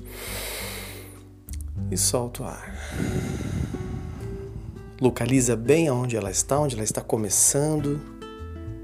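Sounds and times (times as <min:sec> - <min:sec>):
long deep breath drawn in through the nose: 0:00.0 - 0:01.3, 0:02.7 - 0:05.0
speech: 0:01.9 - 0:03.6, 0:05.0 - 0:08.2
low hum: 0:02.8 - 0:05.1.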